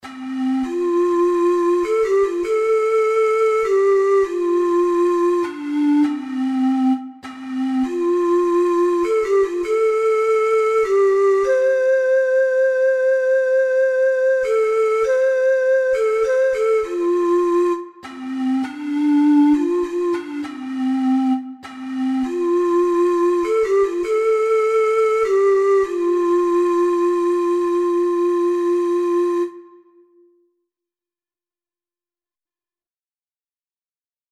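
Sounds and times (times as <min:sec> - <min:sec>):
four-hole ocarina melody: 0:00.0 - 0:30.4.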